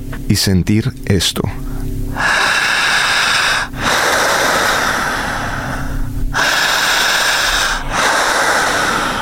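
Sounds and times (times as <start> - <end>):
speech: 0.2 - 1.6
forceful deep inhalations during breathing exercise: 1.7 - 9.2.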